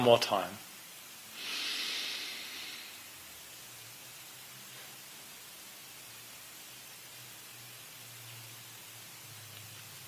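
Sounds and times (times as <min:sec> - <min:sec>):
speech: 0:00.0 - 0:00.7
slow deep breath during a box breathing exercise: 0:01.3 - 0:03.2.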